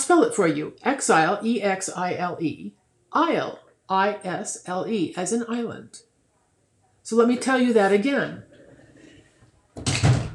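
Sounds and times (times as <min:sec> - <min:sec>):
speech: 0:00.1 - 0:06.1, 0:07.1 - 0:08.5
door pushed shut: 0:09.8 - 0:10.3.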